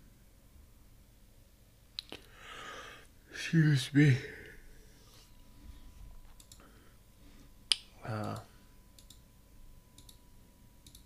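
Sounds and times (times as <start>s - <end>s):
low steady hum: 0.0s - 11.0s
speech: 3.5s - 4.4s
clicks: 6.2s - 6.7s, 7.7s - 9.2s, 10.0s - 10.2s, 10.8s - 11.0s.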